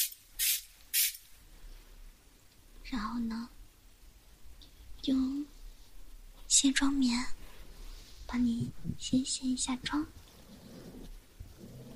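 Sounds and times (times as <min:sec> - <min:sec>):
hydrating facial mist spray bottle hissing: 0:00.0 - 0:01.2
speech: 0:02.9 - 0:03.6, 0:05.0 - 0:05.5, 0:06.5 - 0:07.4, 0:08.3 - 0:10.2.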